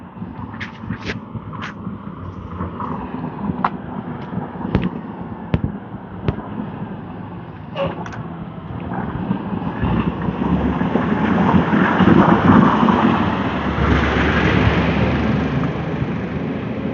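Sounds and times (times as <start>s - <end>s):
garbage truck rumbling past: 0.0s - 16.9s.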